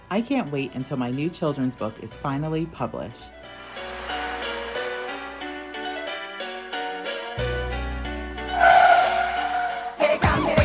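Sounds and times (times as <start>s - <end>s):
speech: 0.1s - 3.7s
car engine humming: 3.6s - 6.2s, 7.9s - 10.5s.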